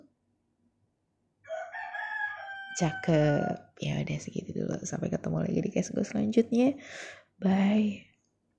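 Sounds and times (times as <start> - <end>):
rooster crowing: 1.4 - 3.6
speech: 2.8 - 8.1.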